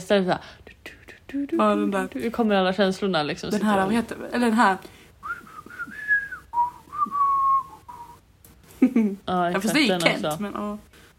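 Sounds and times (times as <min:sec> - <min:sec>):
speech: 0:00.1 - 0:05.0, 0:08.8 - 0:10.9
person whistling a catchy pop tune: 0:05.2 - 0:08.2.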